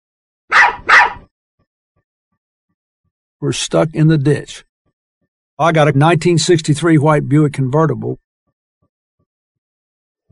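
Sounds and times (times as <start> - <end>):
dog on the roof of a car barking: 0.5 - 1.3
speech: 3.4 - 4.7, 5.6 - 8.2.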